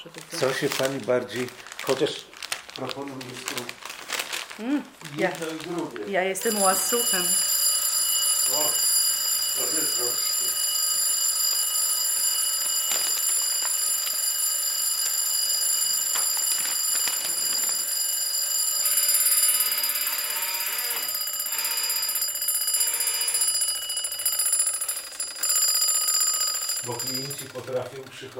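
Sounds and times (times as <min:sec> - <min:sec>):
speech: 0:00.0 - 0:03.8, 0:04.6 - 0:07.5, 0:08.5 - 0:08.8, 0:09.6 - 0:10.3
alarm clock ringing: 0:06.3 - 0:28.3.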